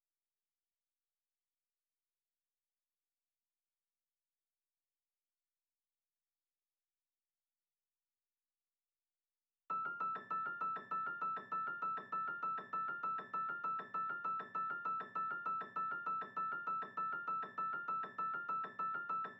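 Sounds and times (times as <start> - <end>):
West Coast piano melody loop in A minor: 9.7 - 19.3.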